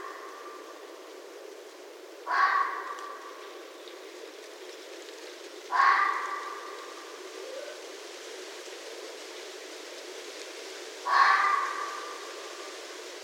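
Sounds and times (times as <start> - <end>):
steady background hiss: 0.0 - 13.2
red fox giving harsh calls: 2.2 - 3.2, 5.7 - 6.7, 11.0 - 12.2.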